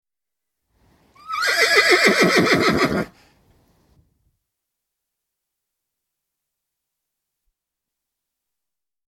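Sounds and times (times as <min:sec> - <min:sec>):
horse neighing outdoors: 0:01.2 - 0:03.2.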